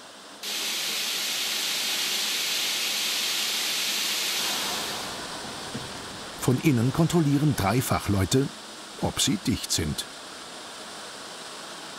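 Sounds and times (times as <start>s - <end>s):
high-pressure water spraying against train doors: 0.4s - 8.2s
speech: 6.5s - 10.2s.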